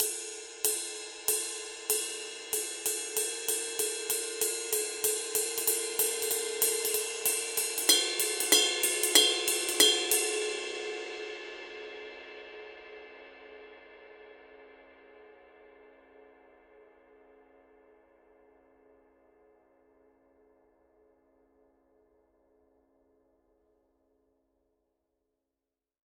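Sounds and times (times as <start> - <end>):
Paiste Twenty Master crisp ride cymbal: 0.0 - 12.5.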